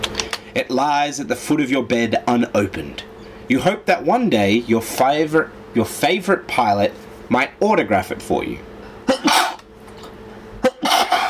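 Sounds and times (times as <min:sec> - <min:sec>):
speech: 0:00.5 - 0:08.7
person sneezing: 0:09.0 - 0:09.6, 0:10.6 - 0:11.2.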